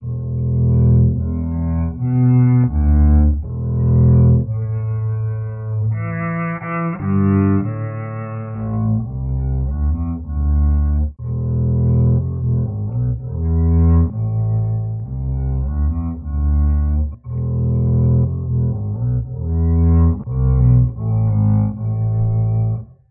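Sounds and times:
sad bass violin noodling loop: 0.0s - 23.0s.

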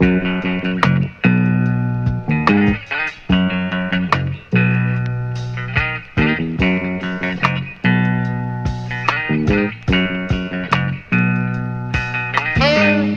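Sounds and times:
guitar: 0.0s - 13.1s
saxophone: 12.6s - 13.1s.

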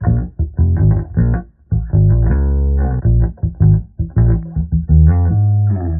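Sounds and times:
phonk bass loop: 0.0s - 5.9s.

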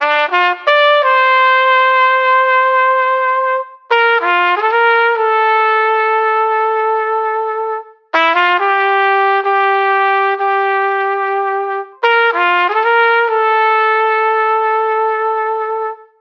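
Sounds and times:
sad horn fanfare loop: 0.0s - 16.1s.

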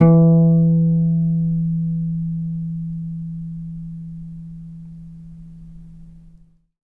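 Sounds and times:
guitar notes: 0.0s - 5.0s.

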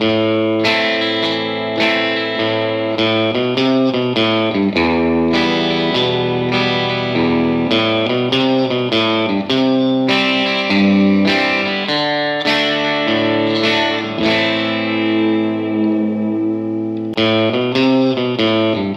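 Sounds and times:
western guitar music loop: 0.0s - 18.9s.

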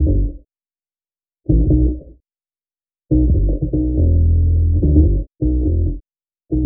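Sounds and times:
jazz bass loop: 0.0s - 0.4s, 1.5s - 2.1s, 3.1s - 6.6s.

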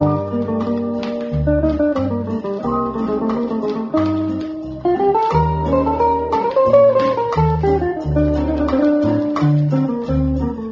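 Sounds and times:
Spanish guitar loops: 0.0s - 10.7s.

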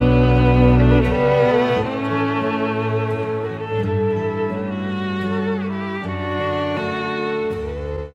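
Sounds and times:
sad wistful string music loop: 0.0s - 8.1s.

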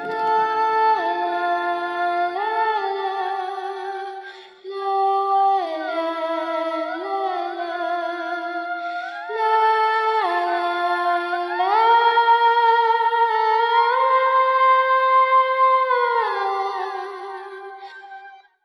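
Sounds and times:
wistful sad woman's voice: 0.0s - 18.6s.

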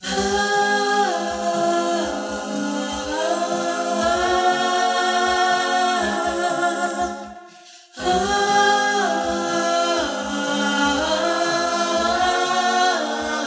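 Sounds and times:
voice loops: 0.0s - 13.4s.

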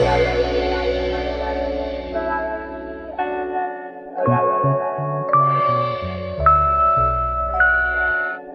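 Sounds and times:
phonk guitar loop: 0.0s - 8.5s.

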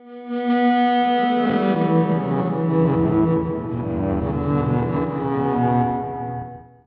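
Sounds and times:
melancholic saxophone loops: 1.3s - 6.6s.

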